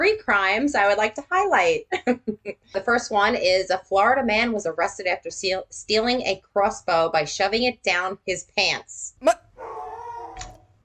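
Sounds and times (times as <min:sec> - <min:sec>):
speech: 0:00.0 - 0:09.9
dog barking: 0:09.6 - 0:10.6.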